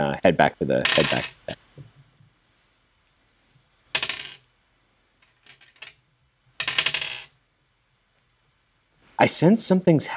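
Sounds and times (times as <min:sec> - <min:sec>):
speech: 0:00.0 - 0:01.6, 0:09.2 - 0:10.1
dice rolling during a tabletop role-playing game: 0:00.8 - 0:01.6, 0:03.9 - 0:04.5, 0:05.2 - 0:06.0, 0:06.6 - 0:07.4.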